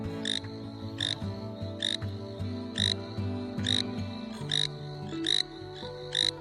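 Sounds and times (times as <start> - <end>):
gentle melodic music bed: 0.0 - 6.4
frog croaking on a sandy beach: 0.1 - 2.0, 2.7 - 3.0, 3.6 - 6.4.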